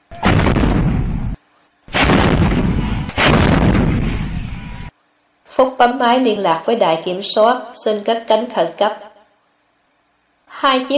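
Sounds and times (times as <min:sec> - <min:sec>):
122 mm rocket barrage exploding at an airfield at night: 0:00.0 - 0:04.9
speech: 0:05.8 - 0:09.1, 0:10.6 - 0:10.9.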